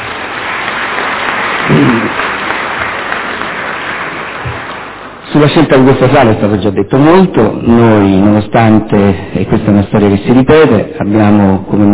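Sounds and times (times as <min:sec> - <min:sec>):
audience applause in a hall: 0:00.0 - 0:05.1
speech: 0:01.7 - 0:02.2, 0:05.4 - 0:11.9.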